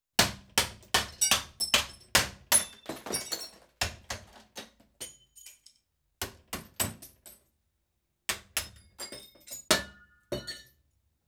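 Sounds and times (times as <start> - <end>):
glass hammered from smashed front in construction: 0.2 - 3.5, 8.6 - 10.7.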